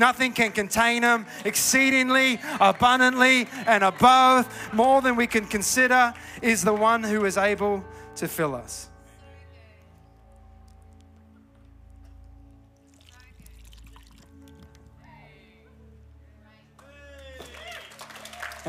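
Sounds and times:
speech: 0.0 - 8.9
liquid pouring into a container: 12.9 - 14.8.

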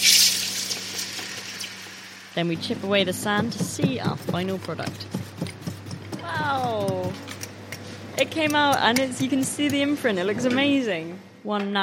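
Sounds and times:
hot molten aluminium sizzling in a bucket of water: 0.0 - 2.5
speech: 2.4 - 5.2, 6.3 - 7.3, 8.2 - 11.8.

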